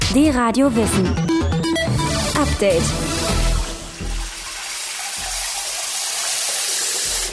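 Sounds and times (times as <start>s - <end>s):
speech: 0.1s - 3.1s
water running from a tap: 2.1s - 7.3s.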